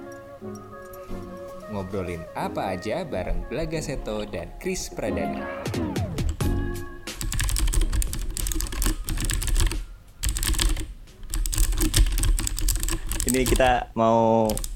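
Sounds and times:
speech: 1.7s - 5.9s, 13.3s - 14.7s
typing on a mechanical keyboard: 7.2s - 13.8s, 14.4s - 14.7s.

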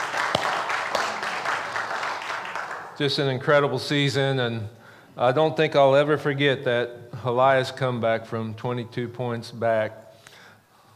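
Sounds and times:
crowd applauding: 0.0s - 3.1s
speech: 3.0s - 10.0s.

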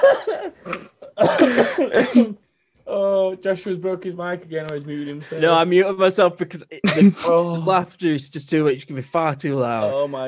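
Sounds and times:
laughter: 0.0s - 2.3s, 6.6s - 7.9s, 9.7s - 10.2s
person coughing: 0.0s - 2.4s, 6.8s - 7.4s
speech: 1.5s - 2.4s, 3.4s - 10.2s.

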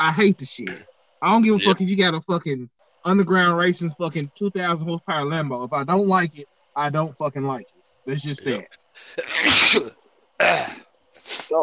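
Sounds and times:
speech: 0.0s - 11.6s
person sneezing: 8.4s - 11.5s.

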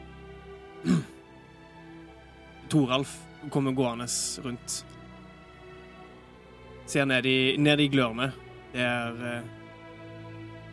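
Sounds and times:
person clearing throat around a campfire: 0.8s - 1.2s
speech: 2.7s - 5.0s, 6.9s - 9.6s.

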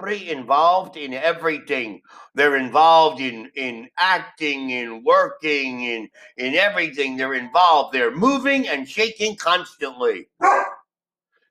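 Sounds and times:
speech: 0.0s - 10.7s
dog bark: 10.4s - 10.8s.

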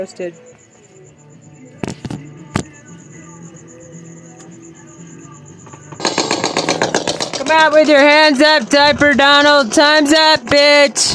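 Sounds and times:
speech: 0.0s - 0.7s, 7.5s - 11.1s
gunshots: 6.0s - 7.4s
rapid sustained burst of gunfire cracks: 6.0s - 8.6s.

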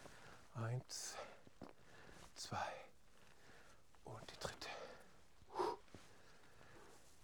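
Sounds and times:
speech: 0.6s - 1.3s, 2.4s - 2.9s
heavy panting exhale after lunges: 5.5s - 5.8s.

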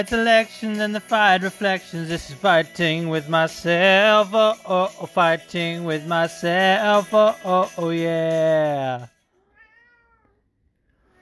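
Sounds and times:
speech: 0.0s - 9.1s
cat meowing: 9.3s - 11.2s.

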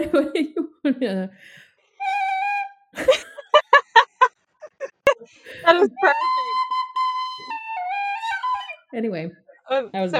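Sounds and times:
laughter: 0.0s - 0.8s, 3.0s - 6.1s
speech: 0.0s - 2.2s, 3.0s - 3.2s, 5.2s - 6.5s, 8.9s - 10.1s
whistle-like tone: 2.0s - 2.9s, 5.8s - 8.9s.

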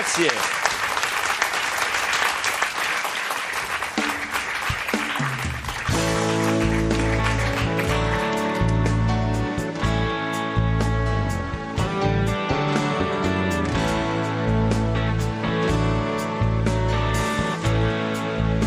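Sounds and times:
live audience applause: 0.0s - 8.8s
speech: 0.1s - 0.6s
music with held notes: 4.4s - 18.6s.

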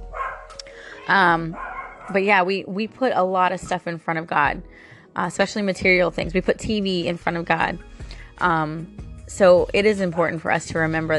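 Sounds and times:
dog barking: 0.1s - 0.6s, 1.5s - 2.2s, 10.1s - 10.4s
speech: 1.1s - 11.1s.

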